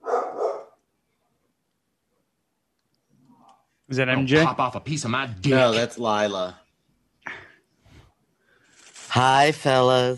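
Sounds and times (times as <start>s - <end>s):
dogs barking: 0.0s - 0.8s
speech: 3.9s - 6.6s, 9.2s - 10.1s.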